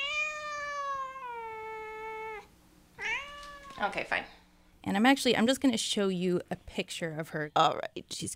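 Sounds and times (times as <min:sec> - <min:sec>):
little black cat with a white nose meowing to go outside: 0:00.0 - 0:03.9
speech: 0:03.8 - 0:08.3.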